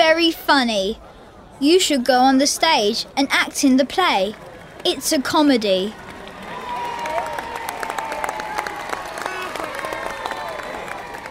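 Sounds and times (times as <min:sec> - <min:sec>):
speech: 0:00.2 - 0:06.0
theatre audience applause at a comedy play: 0:05.9 - 0:11.2.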